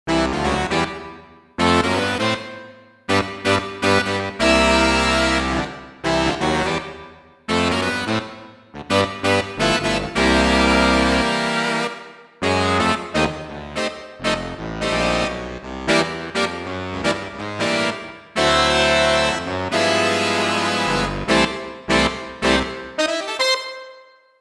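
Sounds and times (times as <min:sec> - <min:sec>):
Roland JV-880 factory patch saxophone section: 0:01.6 - 0:02.5, 0:03.1 - 0:06.8, 0:07.5 - 0:24.2.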